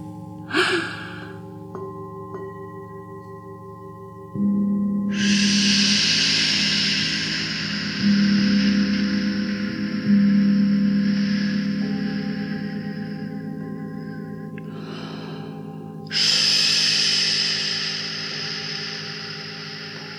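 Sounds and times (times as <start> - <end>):
steady low drone in a cave: 3.9 - 20.1
airy breathy gusts in a cave: 5.1 - 20.1.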